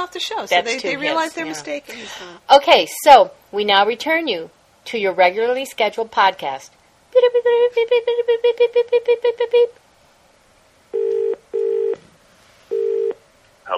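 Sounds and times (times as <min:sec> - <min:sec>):
speech: 0:00.0 - 0:09.8
telephone ringing tones: 0:10.9 - 0:12.0, 0:12.7 - 0:13.2
telephone dialing beeps: 0:11.0 - 0:12.0.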